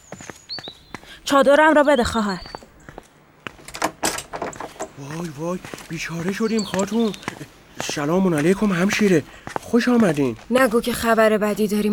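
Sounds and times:
speech: 1.3 - 2.5, 5.0 - 11.9
door rattling and clattering: 3.6 - 5.0.

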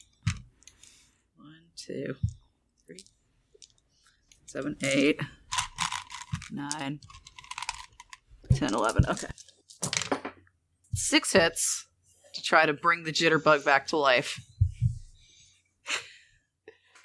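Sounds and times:
speech: 1.9 - 3.1, 4.5 - 5.4, 6.5 - 7.2, 8.6 - 9.3, 11.1 - 11.9, 12.5 - 14.5
dice clattering and clicking as they are rolled across a surface: 4.5 - 10.3.

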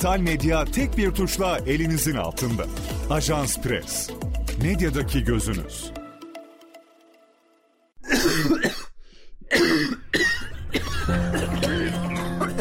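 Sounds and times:
speech: 0.0 - 6.0
person coughing harshly: 8.0 - 12.5.

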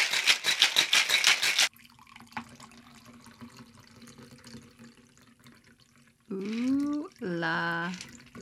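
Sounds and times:
cocktail shaker rattling: 0.0 - 1.7
cocktail pouring into a martini glass: 1.7 - 8.4
speech: 6.4 - 6.6.

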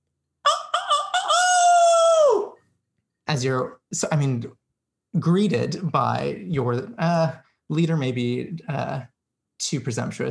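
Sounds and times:
human voice imitating a rooster crow at night: 0.5 - 2.6
speech: 3.3 - 10.2.

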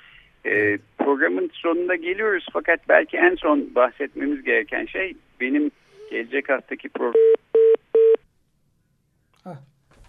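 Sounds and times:
speech: 0.4 - 7.4, 9.4 - 9.7
electronic telephone dialing tones while reconnecting a call: 7.1 - 8.2.

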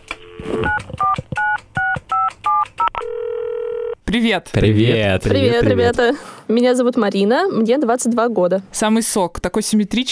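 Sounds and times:
touch-tone beeps dialing a telephone number: 0.3 - 3.9
speech: 4.1 - 10.0.

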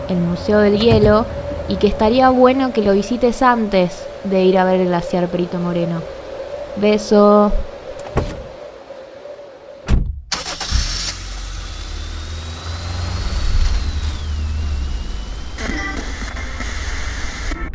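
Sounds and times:
car engine starting and running while travelling through Patagonia Argentina: 0.0 - 3.7, 10.3 - 17.6
speech: 0.1 - 6.2, 6.8 - 7.7.

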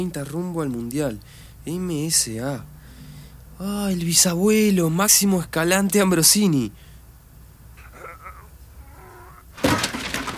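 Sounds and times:
speech: 0.0 - 2.8, 3.6 - 6.8
faint quiet murmuring: 7.8 - 9.4
box crashing over with contents clattering and spilling out: 9.6 - 10.3.

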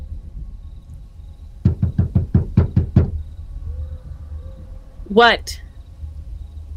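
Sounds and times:
low hum: 0.0 - 6.7
heavy pounding on a door: 1.6 - 3.3
speech: 5.1 - 5.6.

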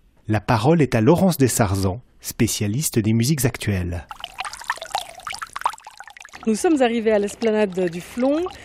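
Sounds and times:
speech: 0.3 - 4.3, 6.4 - 8.6
water splashing and pouring from a public fountain: 4.1 - 8.6.

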